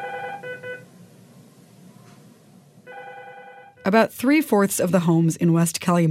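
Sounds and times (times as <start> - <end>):
electronic telephone ringing in short trilling bursts inside an office: 0.0 - 0.8, 2.9 - 3.9
low indoor hum: 0.0 - 6.1
speech: 3.9 - 6.1.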